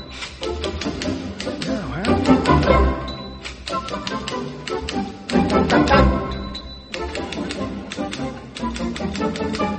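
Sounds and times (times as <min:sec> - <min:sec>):
dense musical piece: 0:00.0 - 0:09.7
typewriter keys clacking played as a musical instrument: 0:00.1 - 0:02.8, 0:03.4 - 0:09.7
typewriter bell dings: 0:06.3 - 0:07.2.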